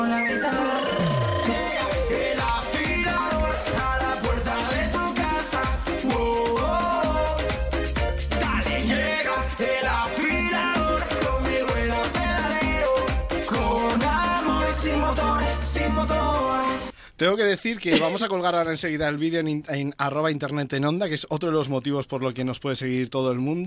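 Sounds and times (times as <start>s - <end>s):
novelty song about a knife sharpener with a bright band arrangement: 0.0s - 16.8s
speech: 17.2s - 23.6s.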